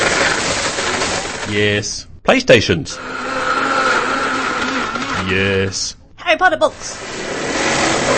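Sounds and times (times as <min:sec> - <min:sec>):
blender running and chopping something: 0:00.0 - 0:01.5, 0:03.0 - 0:05.5, 0:07.0 - 0:08.1
speech: 0:01.5 - 0:03.3, 0:05.3 - 0:07.3.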